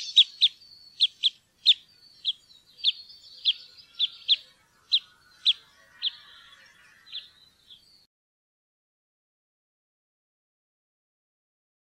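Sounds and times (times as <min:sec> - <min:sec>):
red crossbill calling: 0:00.0 - 0:07.8.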